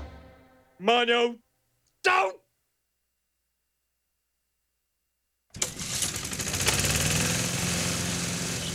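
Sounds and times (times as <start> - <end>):
speech: 0.8 - 1.5, 2.1 - 2.4
small lawnmower engine sputtering to life and running: 5.5 - 8.7.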